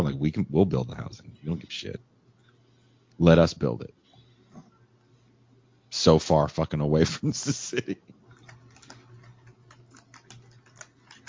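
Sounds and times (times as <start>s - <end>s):
low hum: 0.0s - 11.2s
speech: 0.2s - 2.1s, 3.2s - 4.0s, 6.0s - 8.2s
typing on a keyboard: 8.3s - 11.2s.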